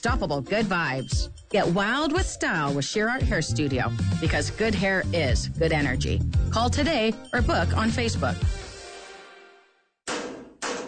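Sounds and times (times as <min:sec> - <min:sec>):
speech: 0:00.0 - 0:08.6
hammer banging on an air conditioner unit: 0:10.1 - 0:10.8.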